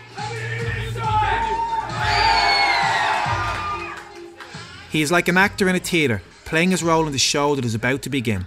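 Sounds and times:
large wrestling crowd cheering and shouting: 0.0s - 4.2s
individual yells and whoops from the crowd: 0.3s - 4.0s
speech: 4.9s - 8.4s.

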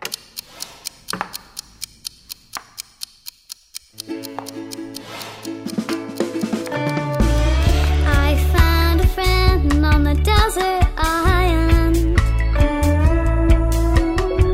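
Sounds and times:
chess clock ticking: 0.0s - 11.8s
music: 4.0s - 14.5s.

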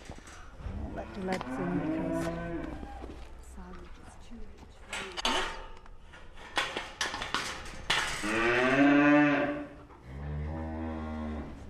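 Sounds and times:
pedigree Limousin suckler cows bawling for nuts: 0.9s - 3.0s, 8.2s - 11.6s
speech: 1.2s - 2.5s
clattering: 4.9s - 8.4s.

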